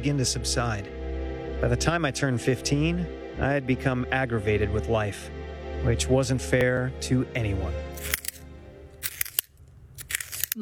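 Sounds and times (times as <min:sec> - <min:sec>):
speech: 0:00.0 - 0:01.0, 0:01.6 - 0:08.2
pencil being sharpened: 0:08.0 - 0:08.4, 0:09.0 - 0:10.5.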